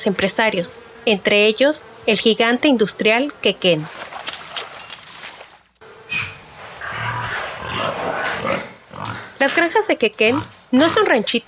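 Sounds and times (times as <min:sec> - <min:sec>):
speech: 0:00.0 - 0:04.1, 0:09.4 - 0:11.4
pigs grunting and squealing in a shed of an industrial pig farm in Yucatán, Mexico: 0:06.1 - 0:11.2.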